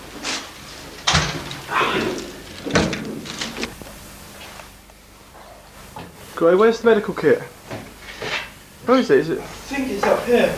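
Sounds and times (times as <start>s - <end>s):
door pushed shut with a solid thud: 1.1s - 3.6s
speech: 6.4s - 7.6s, 8.9s - 10.5s.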